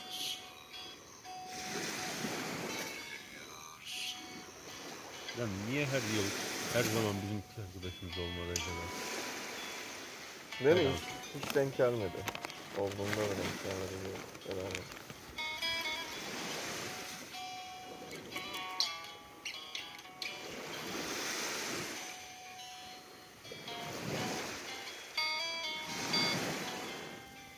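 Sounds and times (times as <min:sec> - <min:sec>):
birds chirping and whistling: 0:00.0 - 0:05.4
sea waves washing onto the shore: 0:01.4 - 0:19.0, 0:20.2 - 0:27.5
speech: 0:05.4 - 0:09.1, 0:10.6 - 0:15.1.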